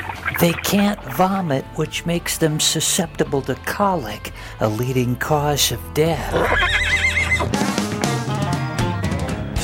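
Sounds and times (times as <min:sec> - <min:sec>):
speech: 0:00.4 - 0:07.7
horse snorting: 0:06.3 - 0:08.3
horse whinnying: 0:06.3 - 0:09.0.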